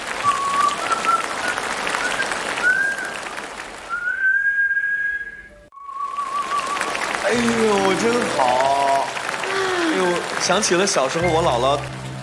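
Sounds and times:
wash of applause-like noise: 0.0s - 4.6s, 5.9s - 12.2s
elderly woman whistling a melody: 0.2s - 3.2s, 3.9s - 6.9s
speech: 10.4s - 12.0s.

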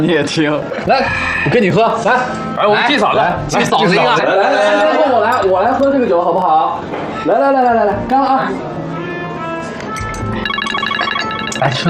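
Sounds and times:
speech: 0.0s - 8.8s, 11.6s - 11.8s
electronic telephone ringtone: 10.4s - 11.8s.

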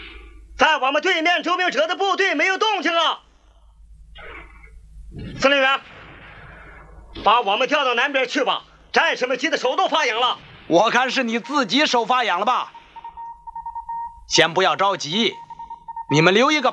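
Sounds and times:
people talking: 0.6s - 3.2s, 4.2s - 5.9s, 7.2s - 12.8s, 14.3s - 16.7s
telephone bell ringing: 11.4s - 16.7s.

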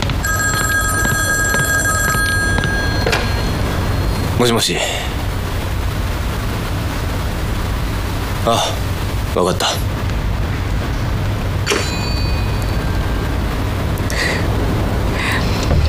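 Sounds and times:
telephone ringing with an electronic trilling tone: 0.2s - 4.3s
hiss: 3.1s - 15.7s.

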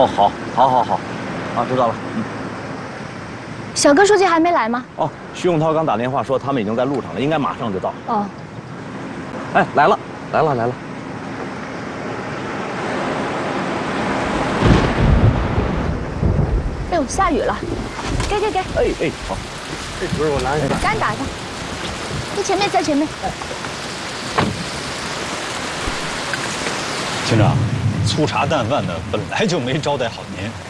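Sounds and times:
speech: 0.0s - 2.4s, 3.8s - 8.4s, 9.5s - 10.8s, 17.0s - 21.4s, 22.4s - 23.6s, 27.3s - 30.6s
steady rain: 0.0s - 30.6s
low rumbling thunder: 14.2s - 23.6s, 27.1s - 30.6s.

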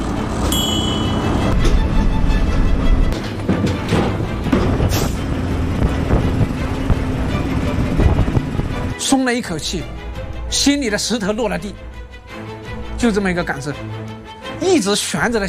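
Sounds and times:
heavy transport vehicles crossing a steel pontoon bridge: 0.0s - 9.0s
clanks and thumps on a steel pontoon bridge: 2.5s - 7.2s
speech: 9.1s - 11.9s, 13.0s - 14.0s, 14.7s - 15.4s.

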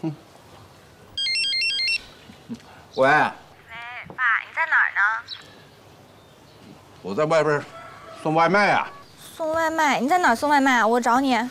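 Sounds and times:
speech: 0.0s - 0.3s, 2.5s - 3.4s, 7.0s - 11.4s
mobile phone ringtone for an incoming call: 1.2s - 2.2s.

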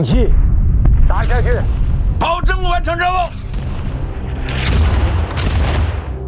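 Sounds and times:
heavy artillery fire booming: 0.2s - 6.2s.

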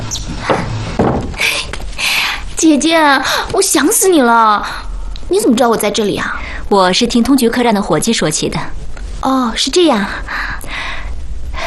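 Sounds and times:
wooden door closing thud: 0.4s - 1.4s
speech: 2.6s - 10.8s.

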